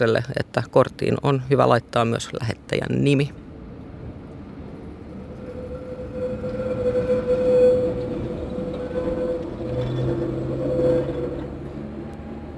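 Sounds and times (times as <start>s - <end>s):
speech: 0.0s - 3.4s
city street traffic noise: 0.0s - 12.5s
tram passing at a city tram stop: 0.0s - 12.5s
sustained metallic whine of a passing tram: 4.2s - 12.5s.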